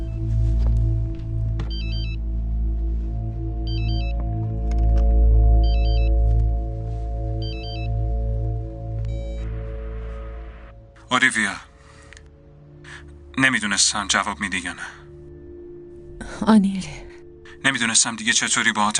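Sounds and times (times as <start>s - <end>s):
constant low droning hum: 0.0s - 17.6s
mobile phone ringtone chirping in short electronic bursts: 3.7s - 4.2s, 5.6s - 6.2s, 7.4s - 8.1s
speech: 11.1s - 11.7s, 13.4s - 15.0s, 16.4s - 17.0s, 17.7s - 18.9s.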